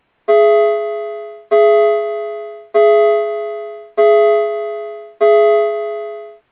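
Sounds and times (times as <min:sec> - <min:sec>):
single chime strike with musical tone: 0:00.3 - 0:06.4.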